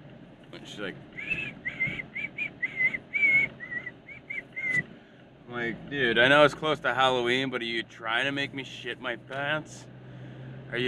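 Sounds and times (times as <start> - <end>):
speech: 0.6 - 2.1, 5.5 - 9.9
man whistling an eerie creepy tune while walking into a store: 1.2 - 4.8.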